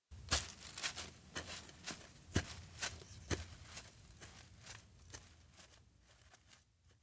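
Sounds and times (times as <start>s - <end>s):
horse walking away on outdoor grassland: 0.2s - 7.0s.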